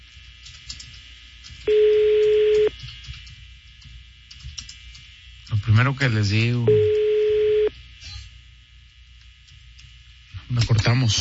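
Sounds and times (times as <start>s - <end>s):
telephone ringback tone of an unanswered call: 1.7s - 2.7s, 6.7s - 7.7s
speech: 5.8s - 6.9s, 11.0s - 11.1s.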